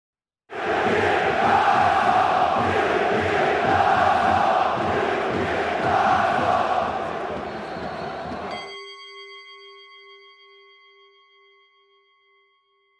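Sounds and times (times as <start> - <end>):
football fans chanting in a stadium: 0.5 - 8.6.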